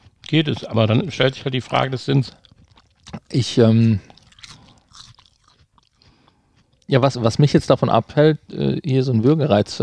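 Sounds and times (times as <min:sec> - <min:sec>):
speech: 0:00.3 - 0:02.4, 0:03.3 - 0:04.1, 0:06.9 - 0:09.8
crunching and chewing a crunchy dried plant snack: 0:01.4 - 0:07.0
swallowing a crunchy dried plant snack: 0:02.3 - 0:06.9.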